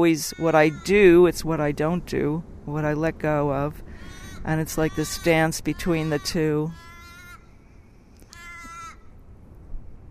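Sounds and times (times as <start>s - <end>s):
speech: 0.0s - 6.8s
quiet outdoor noise: 0.0s - 10.1s
crow cawing while flying over the ocean: 3.9s - 5.3s, 6.0s - 7.6s, 8.2s - 9.2s.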